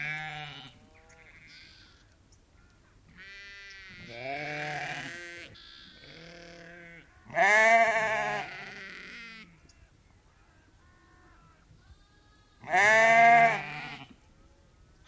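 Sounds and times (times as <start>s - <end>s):
lamb giving loud quavering bleats: 0.0s - 2.0s, 3.2s - 9.6s, 11.2s - 14.2s.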